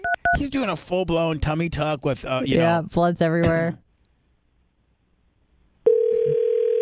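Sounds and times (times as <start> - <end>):
speech: 0.4 - 3.8
outgoing phone call ringing tone: 5.9 - 6.8.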